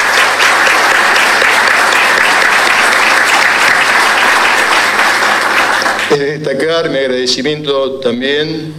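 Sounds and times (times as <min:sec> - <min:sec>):
audience applauding council members and officials: 0:00.0 - 0:06.3
speech: 0:06.4 - 0:08.7.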